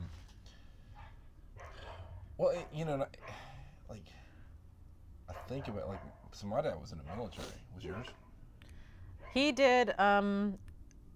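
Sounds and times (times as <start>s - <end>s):
dogs barking in the neighborhood: 0.9s - 3.7s, 5.3s - 8.5s, 9.1s - 9.5s
speech: 2.4s - 4.3s, 5.3s - 8.2s, 9.3s - 10.7s.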